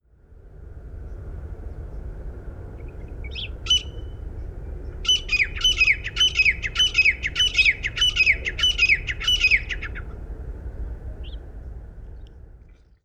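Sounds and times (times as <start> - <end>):
male grey francolin in Oman: 2.8 - 10.1.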